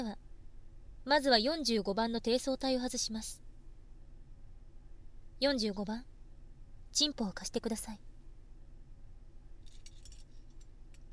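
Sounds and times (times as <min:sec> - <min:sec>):
low steady rumble: 0:00.0 - 0:11.1
speech: 0:01.0 - 0:03.4, 0:05.4 - 0:06.1, 0:06.9 - 0:08.1
keys jangling as they are handled: 0:09.6 - 0:10.7.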